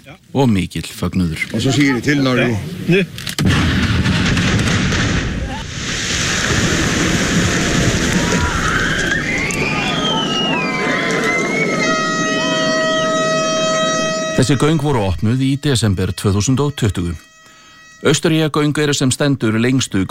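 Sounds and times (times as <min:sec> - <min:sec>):
speech: 0:00.0 - 0:03.8, 0:14.4 - 0:17.3, 0:18.0 - 0:20.0
explosive blast opening road tunnel excavation: 0:03.4 - 0:08.9
steady horn-like tones: 0:09.0 - 0:20.0.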